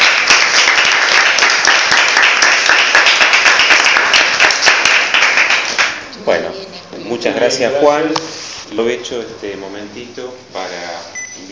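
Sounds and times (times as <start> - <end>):
audience applause after a talk: 0.0 - 6.0
speech: 7.2 - 11.4.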